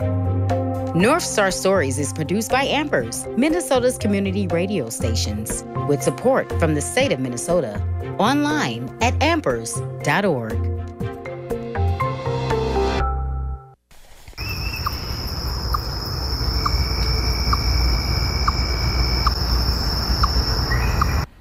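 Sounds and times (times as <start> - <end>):
music: 0.0 - 13.8
speech: 1.0 - 10.7
outdoor hum of insects: 14.3 - 21.3
chipmunk giving short sharp chirps: 14.4 - 21.3.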